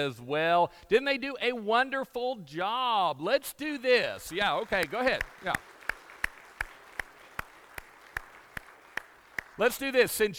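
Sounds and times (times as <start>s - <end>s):
speech: 0.0s - 5.7s, 9.6s - 10.3s
standing audience clapping in a steady rhythm: 4.2s - 10.3s.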